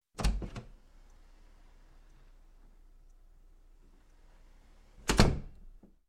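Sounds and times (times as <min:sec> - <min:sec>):
wooden door opening and closing: 0:00.2 - 0:00.7, 0:05.0 - 0:06.0.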